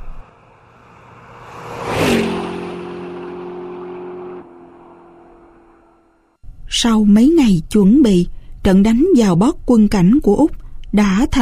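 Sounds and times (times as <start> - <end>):
motorbike engine starting, revving and speeding away: 0.3 - 6.4
speech: 6.8 - 11.4.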